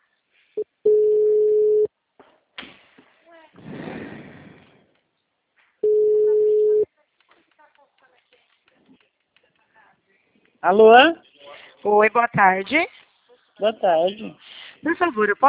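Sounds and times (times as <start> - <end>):
telephone ringback tone while a call is being placed: 0.9 - 1.9, 5.8 - 6.8
speech: 10.6 - 13.0, 13.6 - 15.4.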